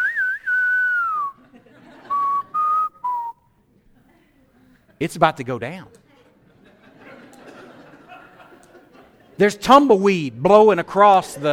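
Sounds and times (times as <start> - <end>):
person whistling a spaghetti-Western showdown tune: 0.0 - 1.4, 2.1 - 3.4
laughter: 1.1 - 3.0, 6.4 - 9.4
speech: 5.0 - 6.0, 9.4 - 11.5.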